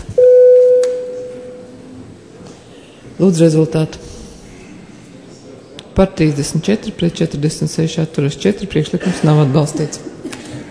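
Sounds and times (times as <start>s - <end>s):
electronic bell in a parliament chamber signalling the start of a vote: 0.2s - 1.8s
speech: 3.2s - 4.2s, 6.0s - 10.2s.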